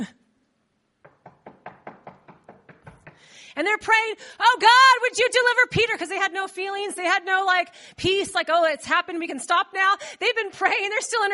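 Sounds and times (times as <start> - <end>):
firm knocks on a wooden door: 1.0 - 3.3
speech: 3.4 - 11.3.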